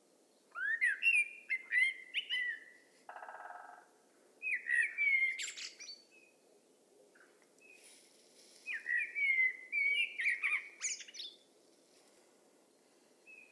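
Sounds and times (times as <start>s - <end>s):
common blackbird Turdus merula fluty whistles: 0.5s - 2.7s, 4.4s - 6.0s, 8.7s - 11.4s.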